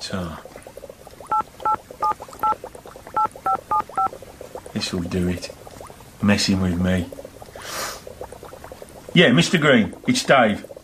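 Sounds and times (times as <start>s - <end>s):
speech: 0.1s - 0.5s, 4.8s - 5.6s, 6.2s - 7.2s, 9.2s - 10.7s
mobile phone touch-tone beeps while dialing: 1.3s - 2.6s, 3.2s - 4.1s.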